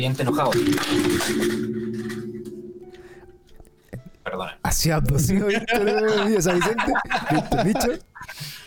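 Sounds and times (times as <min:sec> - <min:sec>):
speech: 0:00.0 - 0:02.1, 0:04.3 - 0:08.5
headphones clattering as a cat knocks them off: 0:00.3 - 0:03.0
laughter: 0:05.4 - 0:08.0.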